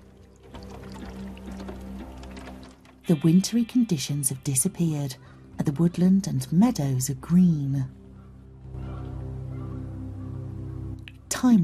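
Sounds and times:
river flowing freely beneath thin surface ice in a mountain valley: 0:00.0 - 0:03.8
speech: 0:03.1 - 0:08.0, 0:11.4 - 0:11.6.

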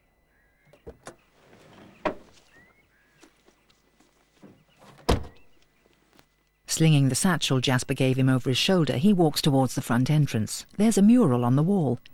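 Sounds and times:
car door clicks and thunks as someone climbs out of the front seat: 0:04.8 - 0:05.5
speech: 0:06.8 - 0:12.1.

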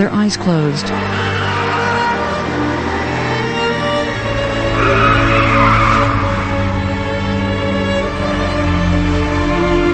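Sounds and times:
speech: 0:00.0 - 0:01.5
car engine roaring: 0:00.0 - 0:09.9
car tires skidding and squealing as the car swerves: 0:00.7 - 0:08.1.

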